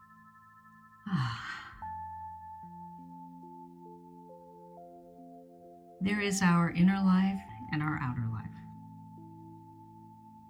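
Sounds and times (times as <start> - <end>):
soft sustained musical tones: 0.0 - 10.4
deep breathy sigh during a calm meditation: 1.1 - 1.9
speech: 6.0 - 8.6.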